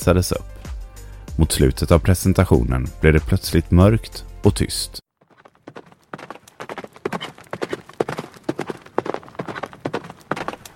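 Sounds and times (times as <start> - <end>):
speech: 0.0 - 0.7, 1.4 - 5.1
horse hooves galloping: 5.2 - 10.7.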